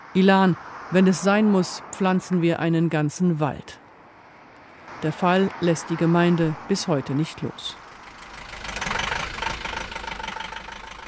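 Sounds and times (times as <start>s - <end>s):
speech: 0.2s - 3.8s, 5.0s - 7.8s
bus engine idling while parking: 7.6s - 11.0s.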